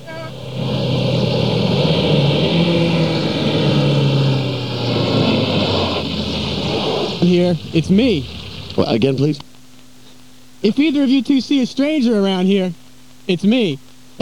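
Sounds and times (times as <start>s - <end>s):
car engine revving: 0.0s - 9.2s
speech: 7.3s - 9.5s, 10.6s - 14.2s.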